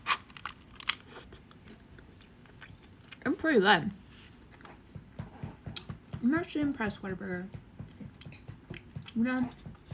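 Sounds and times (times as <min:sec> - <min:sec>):
person biting into a baked snack: 0:00.0 - 0:03.2
speech: 0:03.3 - 0:04.0, 0:06.2 - 0:07.6, 0:09.2 - 0:09.6.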